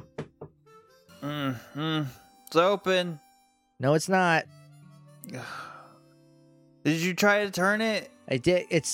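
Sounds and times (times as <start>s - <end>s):
firm knocks on a hotel room door: 0.0s - 0.6s
speech: 1.2s - 3.2s, 3.8s - 4.6s, 5.3s - 5.7s, 6.8s - 8.9s.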